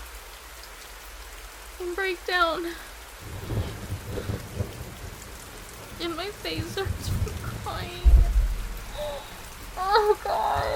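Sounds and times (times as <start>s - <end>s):
steady rain: 0.0s - 10.7s
speech: 1.8s - 3.4s, 6.0s - 8.1s, 9.0s - 10.7s
low thunder rumbling: 3.2s - 10.7s.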